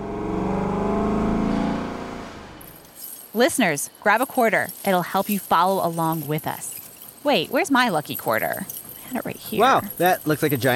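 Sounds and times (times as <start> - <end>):
small armored truck engine rumble and whir while flying: 0.0 - 2.8
speech: 3.4 - 10.7.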